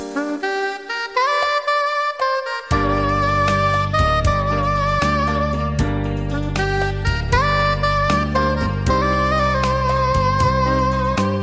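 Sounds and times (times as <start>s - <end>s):
saxophone love ringtone: 0.2s - 11.3s.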